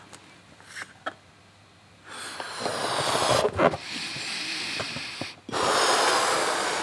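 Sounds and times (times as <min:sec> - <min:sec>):
person sniffing: 0:02.1 - 0:06.8
person blowing up a balloon by mouth: 0:02.2 - 0:06.8.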